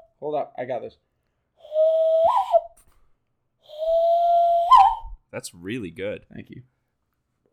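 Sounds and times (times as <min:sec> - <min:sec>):
speech: 0:00.2 - 0:01.1, 0:05.3 - 0:06.8
person whistling an imitation of birds chirping: 0:01.6 - 0:02.8, 0:03.6 - 0:05.2.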